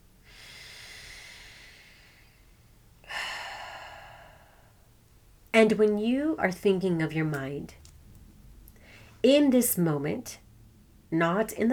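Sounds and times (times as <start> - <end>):
person breathing slowly during a guided relaxation exercise: 0.2 - 4.9
speech: 5.6 - 7.8, 9.2 - 10.4, 11.1 - 11.7.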